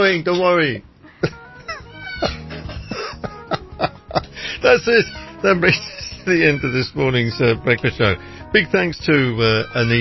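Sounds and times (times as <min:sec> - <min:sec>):
speech: 0:00.0 - 0:00.9, 0:04.6 - 0:09.9
laughter: 0:01.2 - 0:06.8
parrot screaming in harsh squawking bursts: 0:01.7 - 0:02.5, 0:04.8 - 0:07.0, 0:09.5 - 0:09.9.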